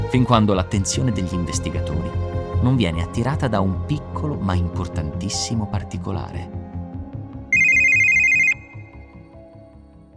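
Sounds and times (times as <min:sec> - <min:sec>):
low pulsing musical backdrop: 0:00.0 - 0:10.1
speech: 0:00.1 - 0:06.6
mobile phone ringing with a steady electronic tone: 0:07.5 - 0:09.3.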